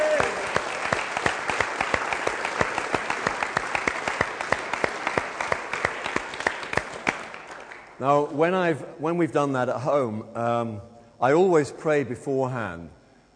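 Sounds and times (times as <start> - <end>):
audience applauding: 0.0 - 8.0
speech: 8.0 - 13.0.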